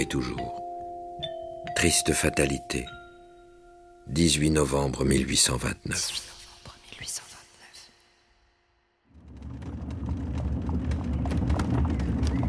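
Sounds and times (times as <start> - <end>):
speech: 0.0 - 0.6, 1.8 - 3.0, 4.0 - 6.4
horse hooves clip-clopping: 9.2 - 12.4
horse-drawn carriage wheels rolling: 9.3 - 12.4.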